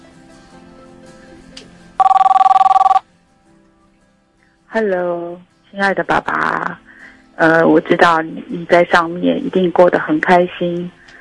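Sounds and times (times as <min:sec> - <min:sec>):
telephone ring with trilling electronic bell pulses: 0:02.0 - 0:03.0
speech: 0:04.7 - 0:06.8, 0:07.4 - 0:11.0.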